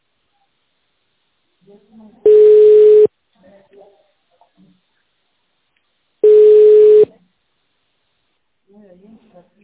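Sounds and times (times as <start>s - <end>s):
telephone line beeps while a call is transferred: 2.3s - 3.1s, 6.2s - 7.1s.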